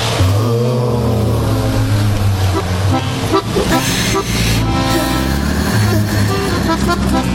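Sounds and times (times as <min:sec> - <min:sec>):
droning engine noise of busy traffic: 0:00.0 - 0:07.3
garbage truck rumbling: 0:00.0 - 0:07.3
car horns tooting: 0:02.5 - 0:07.3.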